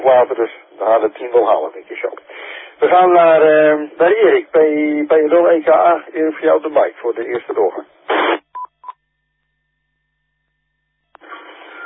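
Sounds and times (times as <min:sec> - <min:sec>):
rush of static-like noise: 0:00.0 - 0:08.5, 0:11.1 - 0:11.8
long faint steady whine: 0:00.0 - 0:11.8
speech: 0:00.1 - 0:08.4
burst of hiss: 0:08.1 - 0:08.4
Dolce Gusto coffee capsule machine beeping: 0:11.3 - 0:11.8.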